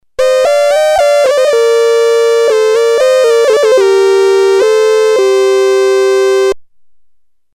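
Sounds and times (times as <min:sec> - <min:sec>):
Polivoks synthesizer folk lead: 0:00.1 - 0:06.6.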